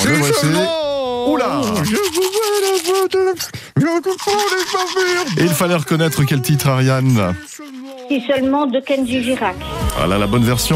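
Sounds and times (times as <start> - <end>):
speech: 0.3 - 10.7
toothbrush scrubbing teeth: 1.4 - 9.4.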